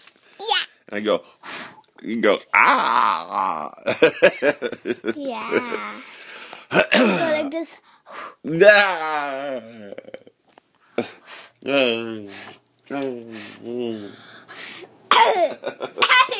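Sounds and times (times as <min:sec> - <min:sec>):
speech: 0:00.9 - 0:06.1, 0:07.0 - 0:10.3, 0:11.0 - 0:14.4, 0:15.2 - 0:16.3
drawn-out voiced vocal sounds: 0:05.2 - 0:07.2, 0:08.4 - 0:10.3, 0:11.6 - 0:15.0
person coughing: 0:06.7 - 0:07.5, 0:15.1 - 0:16.3.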